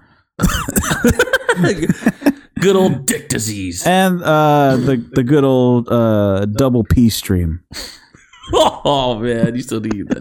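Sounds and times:
harsh raspy cough: 0.4s - 2.1s, 4.7s - 5.1s
laughter: 0.4s - 3.0s, 8.2s - 10.1s
speech: 0.4s - 10.1s.

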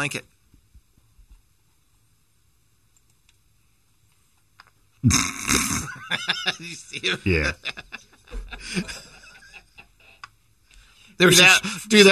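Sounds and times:
speech: 0.0s - 0.3s, 5.0s - 5.4s, 6.1s - 9.1s, 11.2s - 12.1s
voice imitating snorting and sniffing: 5.0s - 5.9s
laughter: 5.6s - 10.2s.

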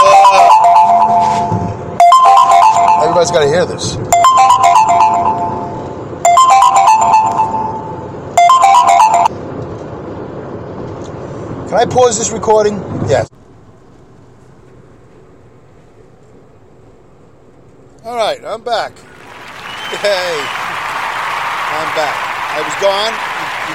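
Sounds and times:
phone ringtone for an incoming call, bright electronic melody: 0.0s - 9.4s
speech: 3.2s - 4.2s, 11.8s - 13.4s, 20.0s - 20.6s, 22.0s - 23.7s.

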